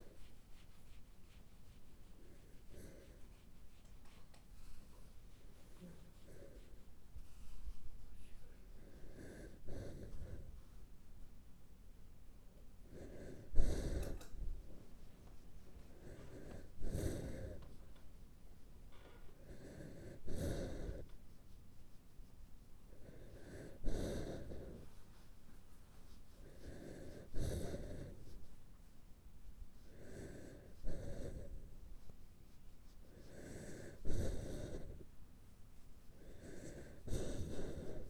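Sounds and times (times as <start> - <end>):
Shiba Inu dog breathing: 0.0 - 10.7, 12.8 - 14.7, 15.8 - 17.8, 19.4 - 21.2, 22.8 - 25.3, 26.0 - 28.5, 29.8 - 32.1, 33.0 - 35.2, 36.1 - 38.0.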